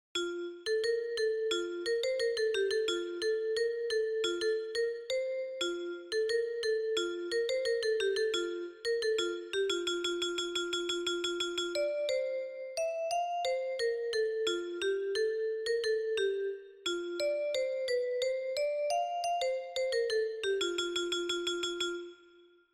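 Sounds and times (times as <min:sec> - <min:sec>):
vibraphone for wind band: 0:00.2 - 0:22.3.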